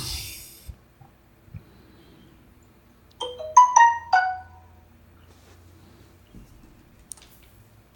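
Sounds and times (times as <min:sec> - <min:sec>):
smartphone app notification chime: 0:03.2 - 0:04.8.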